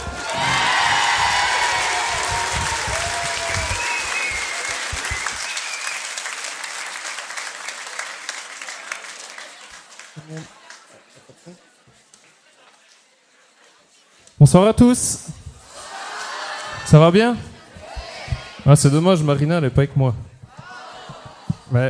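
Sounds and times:
concert audience cheering excitedly: 0.0 - 10.9, 15.6 - 19.0, 20.4 - 21.8
large concert audience applauding: 0.0 - 11.5
concert audience whistling: 2.6 - 6.4
speech: 14.5 - 15.3, 16.9 - 17.5, 18.7 - 20.3.

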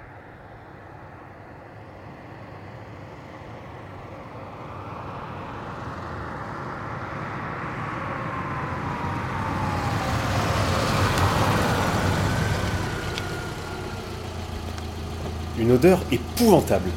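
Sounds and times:
surrounding traffic hum: 0.0 - 16.9
combustion-engine car idling in traffic: 10.3 - 16.9
speech: 15.7 - 16.9.

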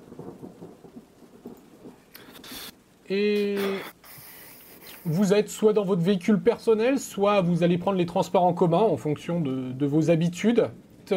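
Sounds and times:
low rumbling thunder: 0.0 - 2.7
rain falling: 0.0 - 11.1
speech: 3.1 - 4.0, 5.0 - 11.1.

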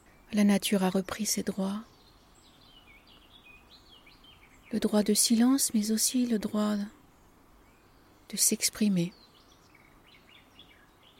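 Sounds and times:
birds chirping and twittering: 0.0 - 11.1
steady outdoor hiss: 0.0 - 11.1
speech: 0.3 - 1.9, 4.7 - 7.0, 8.3 - 9.2.

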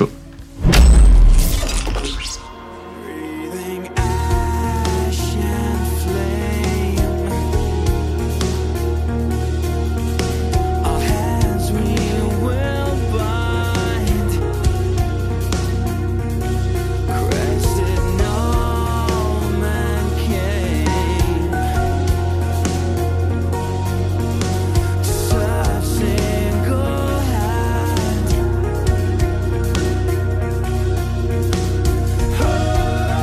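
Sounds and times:
progressive metal track with heavy distorted guitars and drums: 0.0 - 33.2
loud shattering crash: 0.6 - 2.8.

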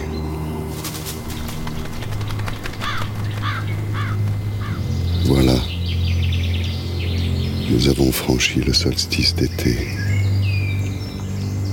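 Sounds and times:
low constant hum: 0.0 - 11.7
carrion crow cawing: 2.4 - 5.0
speech: 7.8 - 10.1.

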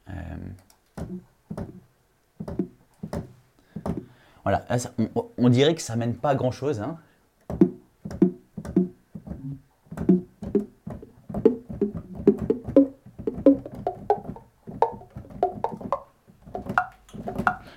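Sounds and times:
falling apple sample played as a melody: 2.4 - 4.1, 7.5 - 17.7
speech: 4.5 - 7.0.

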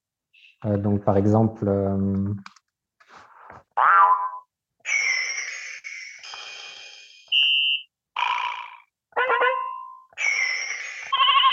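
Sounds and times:
speech: 0.6 - 2.5
electronic toy rhythm button sound effects: 3.8 - 11.5.

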